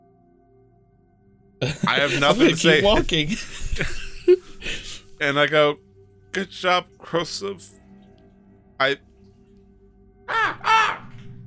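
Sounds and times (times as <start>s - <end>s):
laughter: 1.6s - 5.2s
speech: 1.6s - 7.8s, 8.8s - 9.1s
person imitating a crow's caw: 10.3s - 11.1s.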